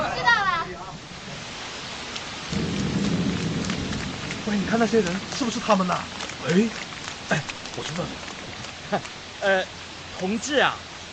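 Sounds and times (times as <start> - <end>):
steady rain hissing: 0.0 - 11.1
deep low rumble of thunder: 2.4 - 8.6
speech: 4.5 - 8.3, 8.9 - 10.9.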